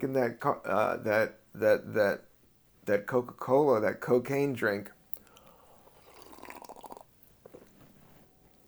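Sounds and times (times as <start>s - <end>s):
speech: 0.1s - 2.3s, 2.9s - 5.0s
soda maker carbonating water: 6.0s - 7.1s.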